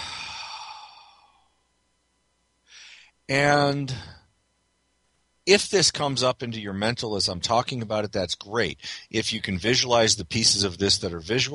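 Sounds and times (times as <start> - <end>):
deep breath drawn by a single person: 0.0 - 1.6, 2.6 - 3.2, 8.8 - 9.1
speech: 3.3 - 4.2, 5.5 - 11.5.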